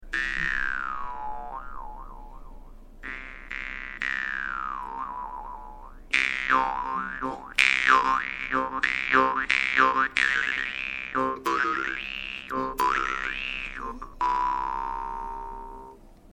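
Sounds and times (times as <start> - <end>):
jaw harp twanging: 0.0 - 16.0.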